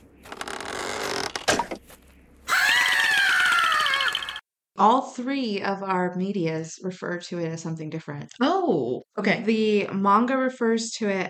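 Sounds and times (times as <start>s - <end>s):
person imitating a woman's shrill screech: 2.5s - 4.4s
speech: 4.8s - 11.2s.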